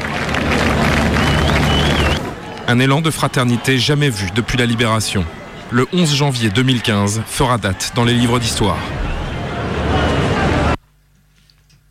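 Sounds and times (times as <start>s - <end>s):
large crowd applauding loudly: 0.0s - 10.8s
faint whistle: 1.2s - 2.2s
speech: 2.7s - 9.1s.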